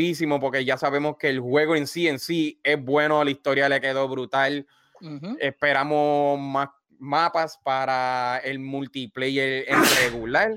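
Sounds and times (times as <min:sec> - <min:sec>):
speech: 0:00.0 - 0:10.5
sharp sneeze: 0:09.7 - 0:10.3.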